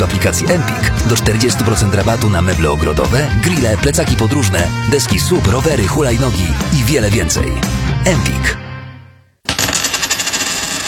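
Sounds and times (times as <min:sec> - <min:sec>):
speech: 0:00.0 - 0:08.6
coin flicked landing and spinning on a hard surface: 0:09.5 - 0:10.8.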